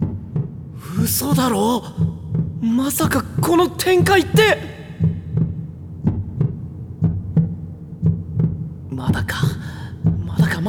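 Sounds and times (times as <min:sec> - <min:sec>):
heartbeat sound effect of a pounding heart: 0:00.0 - 0:10.6
speech: 0:00.9 - 0:04.8.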